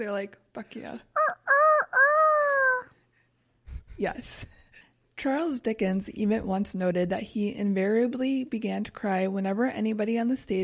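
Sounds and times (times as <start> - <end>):
speech: 0.0 - 1.1, 4.0 - 4.6, 5.2 - 10.6
rooster crowing: 1.2 - 2.9.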